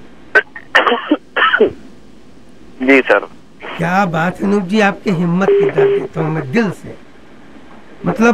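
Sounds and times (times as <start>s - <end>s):
unwell singer coughing: 0.8s - 1.8s
speech: 2.9s - 7.0s, 8.0s - 8.3s.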